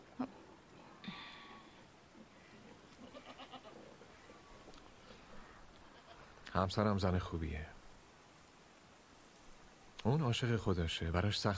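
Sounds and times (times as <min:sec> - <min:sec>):
low steady outdoor noise: 0:00.0 - 0:11.5
goat bleating: 0:02.9 - 0:04.0, 0:05.8 - 0:06.3
speech: 0:06.6 - 0:07.8, 0:10.0 - 0:11.5.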